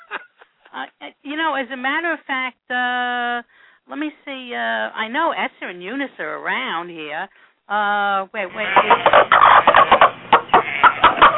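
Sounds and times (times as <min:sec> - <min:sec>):
speech: 0:00.8 - 0:10.1
chickens clucking: 0:08.6 - 0:11.3.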